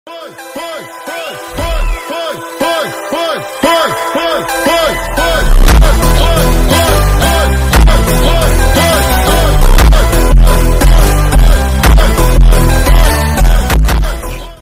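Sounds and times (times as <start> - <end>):
phonk music: 0.1 - 14.6.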